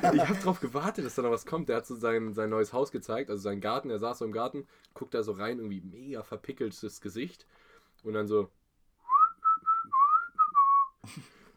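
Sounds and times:
laughter: 0:00.0 - 0:01.4
speech: 0:00.0 - 0:08.6, 0:11.0 - 0:11.4
person whistling a short tune: 0:09.0 - 0:11.0.

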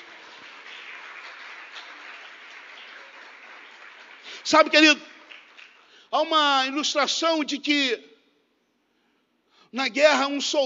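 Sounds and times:
audience applauding: 0:00.0 - 0:06.1
speech: 0:04.4 - 0:05.1, 0:06.1 - 0:08.1, 0:09.7 - 0:10.6.

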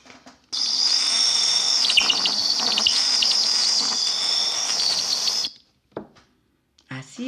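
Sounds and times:
little bird chirping song: 0:00.6 - 0:05.5.

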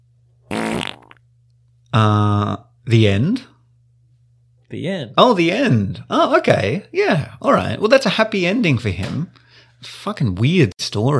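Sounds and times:
buzzy fart sound effect: 0:00.5 - 0:01.2
speech: 0:02.0 - 0:02.2, 0:02.9 - 0:03.5, 0:04.7 - 0:11.1.

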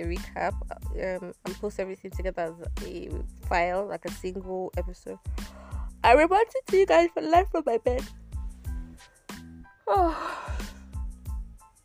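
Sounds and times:
speech: 0:00.0 - 0:08.2, 0:09.9 - 0:10.6
person yawning: 0:09.9 - 0:10.9.

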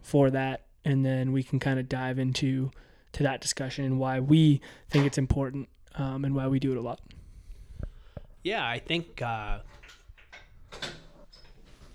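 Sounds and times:
speech: 0:00.1 - 0:07.2, 0:08.4 - 0:09.8
back door opening with latch clunk and rattle: 0:09.6 - 0:11.9.

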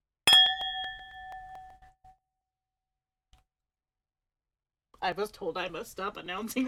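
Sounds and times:
wine glasses clinking in a toast: 0:00.3 - 0:01.8
clear high ringing tone of wine glasses: 0:00.3 - 0:02.2
speech: 0:05.0 - 0:06.6.

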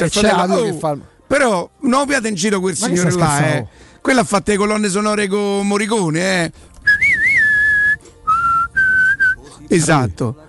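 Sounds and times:
speech: 0:00.0 - 0:06.7, 0:09.7 - 0:10.4
person whistling a melody: 0:06.8 - 0:09.4.

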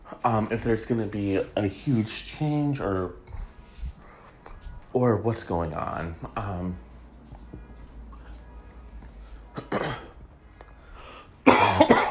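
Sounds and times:
faint noise: 0:00.0 - 0:12.0
speech: 0:00.2 - 0:03.2, 0:05.0 - 0:06.9
person coughing: 0:09.5 - 0:10.2, 0:11.4 - 0:12.0.

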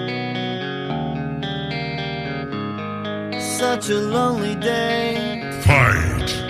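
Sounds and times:
distorted rock guitar intro with thick layered chords: 0:00.0 - 0:06.4
speech: 0:03.6 - 0:06.4
steady low bass: 0:05.6 - 0:06.4.

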